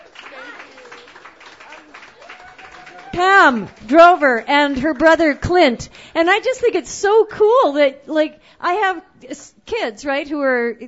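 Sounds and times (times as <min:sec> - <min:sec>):
people whooping: 0:00.0 - 0:04.0
crowd applauding: 0:00.0 - 0:05.4
speech: 0:03.2 - 0:10.8.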